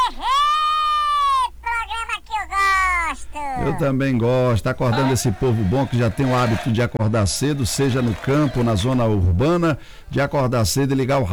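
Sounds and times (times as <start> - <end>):
person shouting a war cry: 0.0 - 6.6
laughter: 0.0 - 11.3
speech: 3.7 - 11.3.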